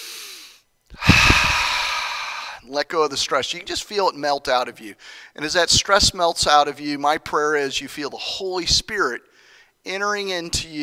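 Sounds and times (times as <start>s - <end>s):
big deep inhale during a guided collective breath at a worship gathering: 0.0s - 2.7s, 5.0s - 5.4s, 9.3s - 9.8s
speech: 2.7s - 10.8s.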